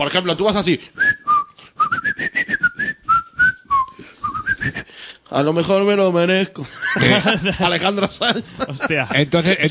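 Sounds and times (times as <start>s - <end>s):
speech: 0.0s - 1.1s, 5.3s - 9.6s
person whistling a tune: 1.0s - 4.9s
short breaths between notes: 3.8s - 5.3s
laughter: 6.6s - 9.6s.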